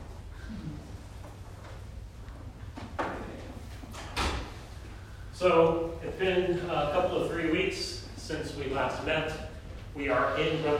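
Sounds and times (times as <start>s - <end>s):
low room rumble: 0.0s - 10.7s
door being pushed shut with a scraping slide: 3.9s - 4.6s
speech: 5.4s - 9.4s, 10.0s - 10.7s.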